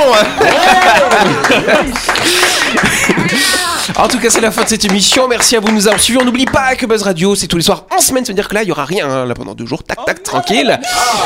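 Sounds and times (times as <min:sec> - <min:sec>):
small group laughing and chuckling in a radio studio: 0:00.0 - 0:04.5
lively overlapping voices: 0:00.0 - 0:06.8
small group applauding in a radio studio: 0:00.0 - 0:07.0
speech: 0:00.1 - 0:11.2.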